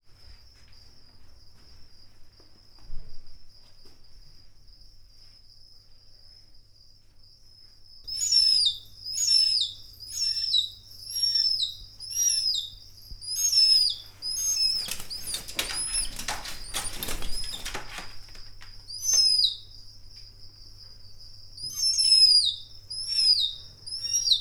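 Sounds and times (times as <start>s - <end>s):
six-month-old western marsh harrier chick calling in a zoo: 8.1s - 20.0s, 21.5s - 24.4s.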